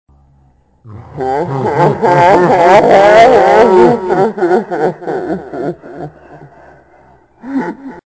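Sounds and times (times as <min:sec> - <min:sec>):
evil laugh: 0:00.9 - 0:08.0.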